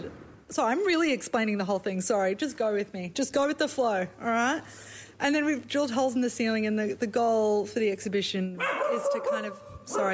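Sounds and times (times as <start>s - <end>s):
speech: 0.5s - 10.1s
dog barking and yipping in high-pitched bursts: 8.6s - 10.1s.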